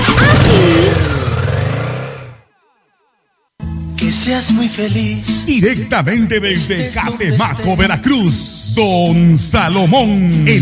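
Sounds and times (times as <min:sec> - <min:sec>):
motorcycle engine revving: 0:00.0 - 0:02.5
speech: 0:04.2 - 0:10.5.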